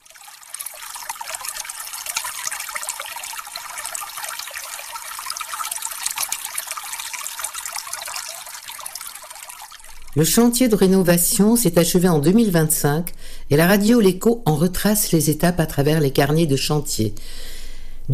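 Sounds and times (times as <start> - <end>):
free drinkable mineral spring water running from a public fountain: 0.0 - 12.8
speech: 10.2 - 17.5.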